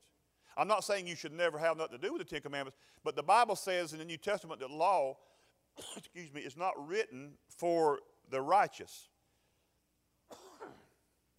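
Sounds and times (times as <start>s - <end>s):
speech: 0.6s - 9.1s
person coughing: 5.8s - 6.2s, 10.3s - 11.0s.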